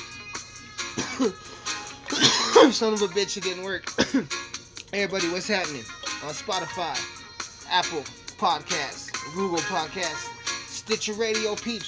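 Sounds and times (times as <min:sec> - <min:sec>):
throaty clearing: 0:01.0 - 0:01.4, 0:02.1 - 0:02.8, 0:04.0 - 0:04.3
stifled coughing after a vape hit: 0:01.0 - 0:01.5, 0:02.1 - 0:02.9, 0:03.9 - 0:04.4
speech: 0:01.2 - 0:01.6, 0:02.6 - 0:10.3, 0:10.9 - 0:11.8.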